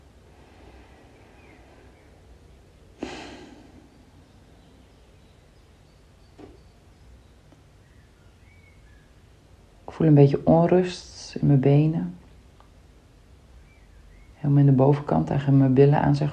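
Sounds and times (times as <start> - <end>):
slow deliberate breathing: 0.0 - 4.7
speech: 10.0 - 12.2, 14.5 - 16.3.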